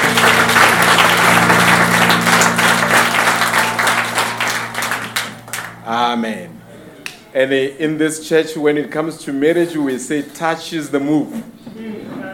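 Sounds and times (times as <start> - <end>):
church audience applauding: 0.0 - 5.9
speech: 6.2 - 6.5, 7.4 - 12.3.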